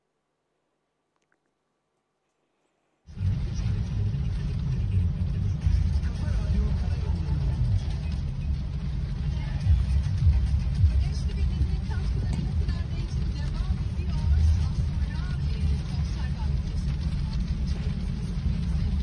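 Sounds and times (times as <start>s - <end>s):
bus and courier motorbike engines roaring in a storm: 3.1s - 19.0s.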